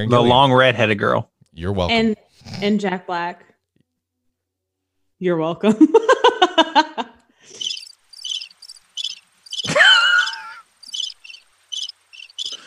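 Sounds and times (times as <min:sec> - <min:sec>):
speech: 0:00.0 - 0:03.5, 0:05.2 - 0:06.2
crickets chirping in high-pitched bursts: 0:07.5 - 0:12.6
short burst of laughter: 0:09.6 - 0:10.7.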